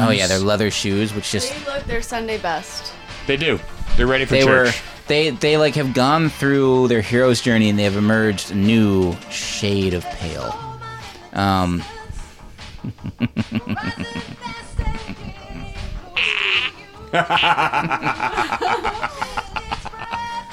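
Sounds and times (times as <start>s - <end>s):
speech: 0.0s - 10.7s, 11.4s - 12.0s, 12.8s - 14.6s, 17.1s - 19.4s
people laughing: 12.8s - 20.4s
comic fart sound effects from a novelty machine: 16.2s - 16.8s.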